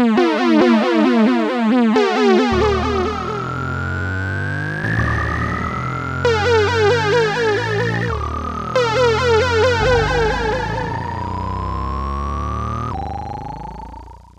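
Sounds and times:
emergency alarm tones from a Casio Rapman keyboard: 0.2 - 14.3.

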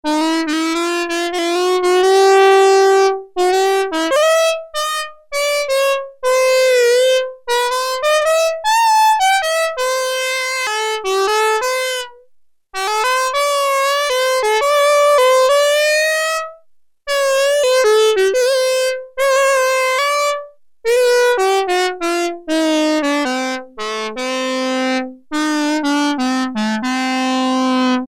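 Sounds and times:
synthesizer saxophone patch: 0.1 - 12.2, 12.8 - 28.0.

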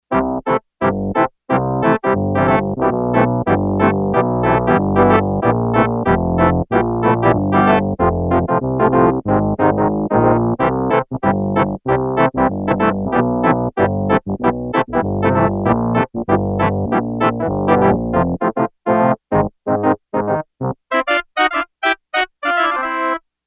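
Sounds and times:
Yamaha TX802 synthesizer organ sound: 0.1 - 23.0.

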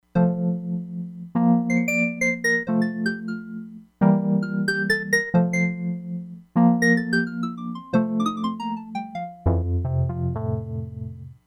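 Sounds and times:
Wurlitzer electric piano: 0.2 - 11.4.

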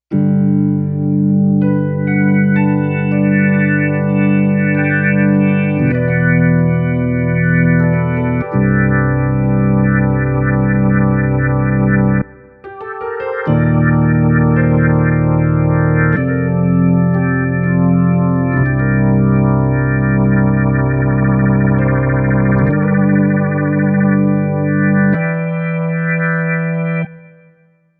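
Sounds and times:
organ: 0.1 - 27.9
piano: 0.1 - 27.9.

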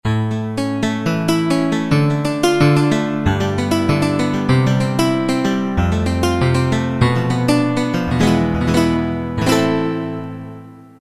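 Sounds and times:
guitar sound from a Roland MT-32 synthesizer: 0.1 - 11.0.

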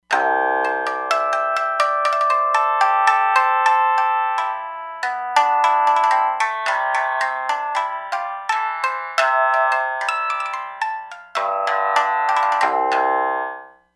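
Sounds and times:
jamisen on a Roland Fantom XR: 0.0 - 13.7.

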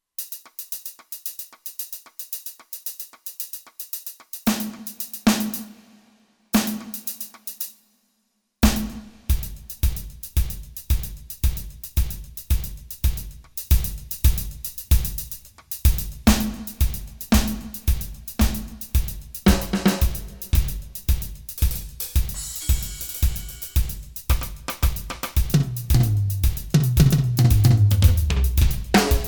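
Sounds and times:
foot drummer kick drum on a synthesizer: 8.6 - 29.2.

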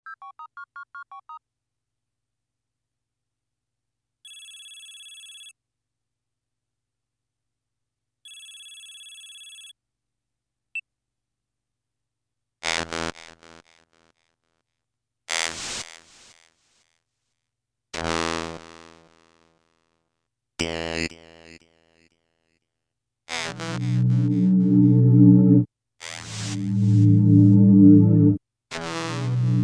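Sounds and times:
jingle on a Korg MS2000 synthesizer: 23.7 - 25.7, 26.4 - 28.4.

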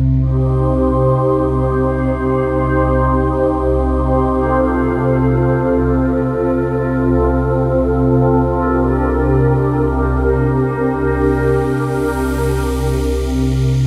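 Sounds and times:
dark vox synthesizer patch: 0.1 - 13.8.

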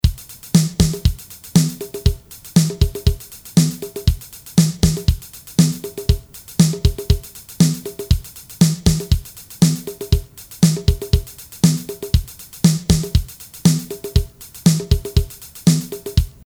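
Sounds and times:
cute sequence on Akai MPC1000 sampler: 0.0 - 16.4.

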